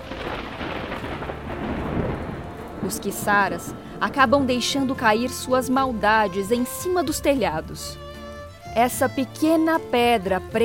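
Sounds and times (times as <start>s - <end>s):
dense storm noise on a stormy night: 0.0s - 6.1s
deep rumble of thunder during a storm: 0.0s - 6.9s
speech: 2.9s - 8.0s, 8.8s - 10.6s.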